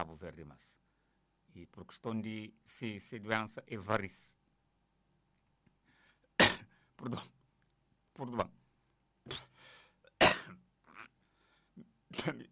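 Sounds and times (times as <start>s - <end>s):
speech: 0.0s - 0.9s, 1.5s - 4.4s, 7.0s - 7.4s, 8.2s - 8.6s, 9.3s - 9.5s, 11.8s - 12.4s
breaths: 0.8s - 1.4s, 5.8s - 7.0s, 9.4s - 10.1s, 11.2s - 11.9s
harsh coughs: 6.4s - 7.3s, 9.3s - 11.1s.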